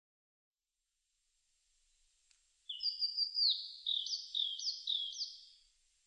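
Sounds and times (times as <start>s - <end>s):
Eastern crowned warbler song: 2.7s - 5.8s.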